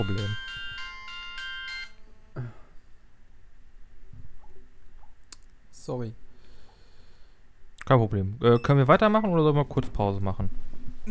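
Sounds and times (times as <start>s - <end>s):
speech: 0.0s - 0.4s, 5.9s - 6.2s, 7.9s - 11.0s
phone ringtone of repeated electronic notes: 0.0s - 2.1s.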